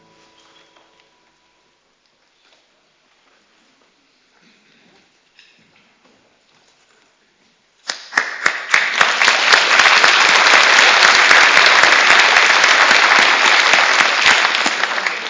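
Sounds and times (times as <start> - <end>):
audience applause after a song: 7.9 - 15.2.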